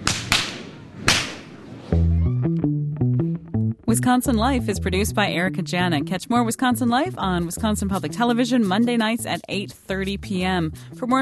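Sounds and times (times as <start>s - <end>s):
sharp loud whip cracks: 0.0s - 1.8s
steady instrumental tune: 2.0s - 11.0s
speech: 3.9s - 11.1s.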